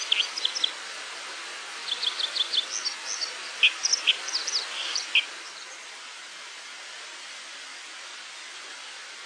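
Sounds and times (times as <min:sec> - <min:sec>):
white-throated dipper singing sharp high twittering notes: 0:00.0 - 0:00.8, 0:01.8 - 0:05.9
constant background hiss: 0:00.0 - 0:09.2.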